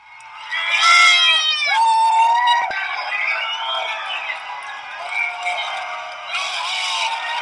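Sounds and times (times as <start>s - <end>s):
large outdoor crowd yelling and cheering at federal agents: 0.0s - 7.4s
high whoops: 0.7s - 2.8s.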